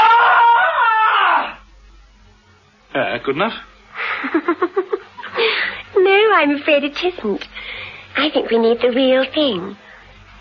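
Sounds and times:
woman's loud shrill blood-curdling scream: 0:00.0 - 0:01.6
speech: 0:03.2 - 0:05.0, 0:06.3 - 0:07.5, 0:08.2 - 0:09.8.

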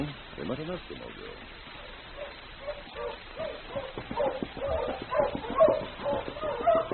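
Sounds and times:
speech: 0:00.0 - 0:03.4
team of husky sled dogs barking and yipping: 0:01.8 - 0:06.9.

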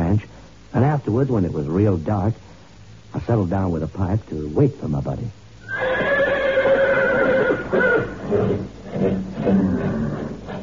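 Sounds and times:
speech: 0:00.2 - 0:02.5, 0:03.1 - 0:06.0
horses neighing and whinnying at a ranch at night: 0:05.6 - 0:10.6.

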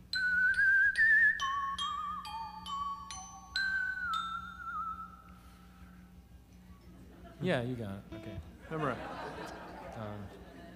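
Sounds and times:
faint hum: 0:00.0 - 0:10.7
person whistling a short clear tune: 0:00.1 - 0:05.8
speech: 0:07.4 - 0:10.4
laughter: 0:08.6 - 0:10.7.

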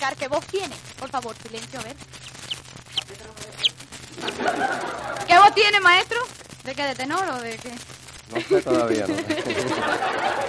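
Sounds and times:
speech: 0:00.0 - 0:02.3, 0:05.4 - 0:10.4
low hiss: 0:00.0 - 0:10.4
15-day-old baby chick peeping: 0:00.6 - 0:06.1
laughter: 0:04.1 - 0:05.9, 0:08.3 - 0:10.4.

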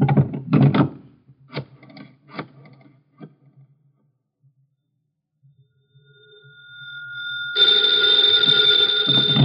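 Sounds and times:
dull knocks and thumps: 0:00.0 - 0:01.1
telephone bell ringing: 0:06.1 - 0:09.4.

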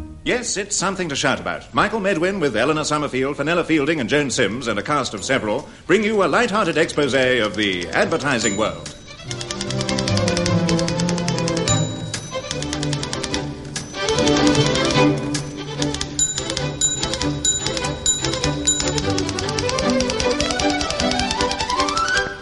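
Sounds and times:
speech: 0:00.4 - 0:09.4
typewriter keys struck very hard in an office: 0:06.9 - 0:22.3.

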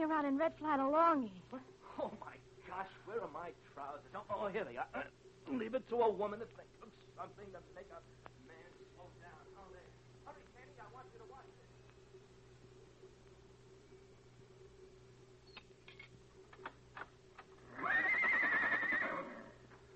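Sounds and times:
speech: 0:00.0 - 0:11.5
steady low hum: 0:00.0 - 0:18.0
horse whinnying: 0:17.6 - 0:19.6.

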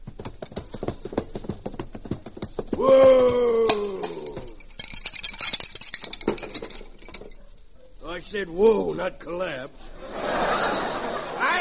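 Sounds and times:
horse galloping: 0:00.0 - 0:05.3
speech: 0:08.2 - 0:10.5
laughter: 0:09.9 - 0:11.5.

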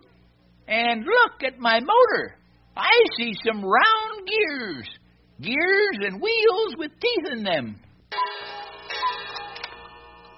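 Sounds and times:
speech: 0:00.7 - 0:08.4
old cuckoo clock striking: 0:08.1 - 0:10.3.

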